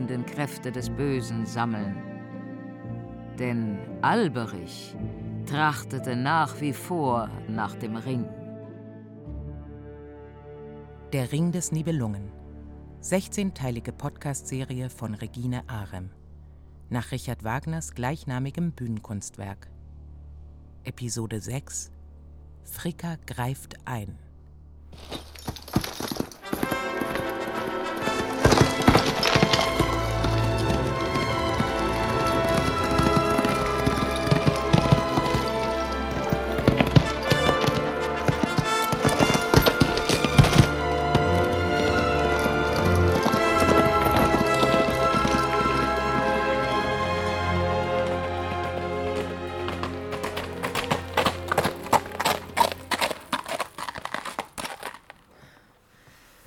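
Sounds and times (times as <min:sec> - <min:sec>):
speech: 0:00.1 - 0:02.1, 0:03.4 - 0:08.4, 0:11.1 - 0:12.4, 0:13.0 - 0:16.2, 0:16.9 - 0:19.7, 0:20.8 - 0:22.0, 0:22.6 - 0:24.2, 0:25.0 - 0:25.2
horse hooves clip-clopping: 0:24.9 - 0:55.3.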